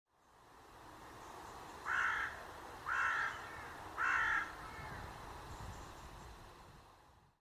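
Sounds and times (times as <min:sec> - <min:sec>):
carrion crow Corvus corone cawing harshly: 0:01.8 - 0:05.0.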